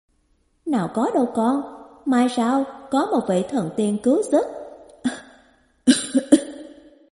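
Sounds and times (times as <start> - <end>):
speech: 0.7 - 5.2
old man ill with an epidemic disease coughing: 5.1 - 6.7.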